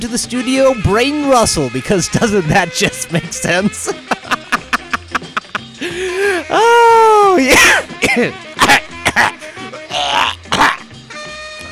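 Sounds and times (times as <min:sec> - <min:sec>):
speech: 0:00.0 - 0:04.0, 0:06.5 - 0:09.4
laughter: 0:03.1 - 0:06.4
person coughing after laughing: 0:04.1 - 0:06.4, 0:07.5 - 0:09.4, 0:10.0 - 0:10.9.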